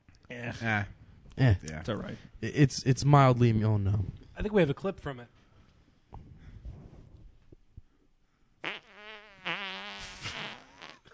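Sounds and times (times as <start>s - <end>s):
speech: 0.4s - 5.4s
fart noises from a played clip: 8.6s - 11.1s.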